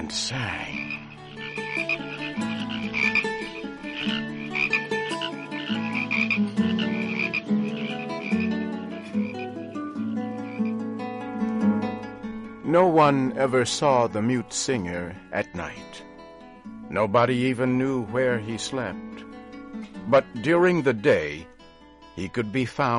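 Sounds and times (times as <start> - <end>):
chorus of many frogs croaking: 0.0 - 10.9
speech: 0.1 - 1.0, 1.8 - 2.4, 12.7 - 16.1, 16.9 - 19.2, 20.1 - 21.5, 22.2 - 22.9.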